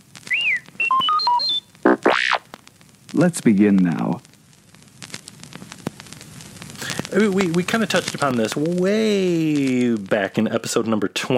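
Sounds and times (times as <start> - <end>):
electronic robot beeps and warbling chirps as page-turn signal: 0.3 - 2.4
speech: 3.1 - 4.3, 7.1 - 11.3.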